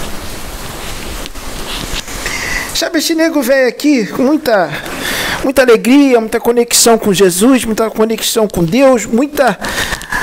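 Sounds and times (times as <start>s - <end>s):
steady rain falling: 0.0s - 10.2s
speech: 2.8s - 10.2s.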